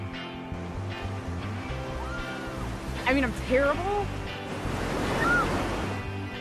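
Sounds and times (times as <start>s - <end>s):
ocean surf breaking at a surf beach: 1.4s - 6.2s
speech: 3.1s - 4.8s.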